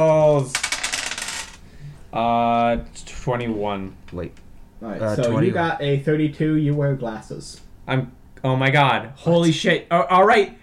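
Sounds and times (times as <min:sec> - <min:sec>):
speech: 0:00.0 - 0:00.6, 0:02.1 - 0:10.6
dice rolled during a tabletop role-playing game: 0:00.5 - 0:01.6.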